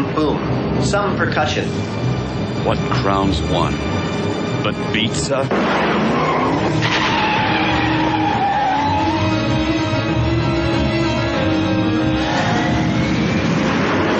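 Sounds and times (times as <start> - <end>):
speech: 0.0 - 7.3
video game car engine roar: 5.5 - 14.1
video game car tire squeals: 5.9 - 10.9, 11.6 - 14.1.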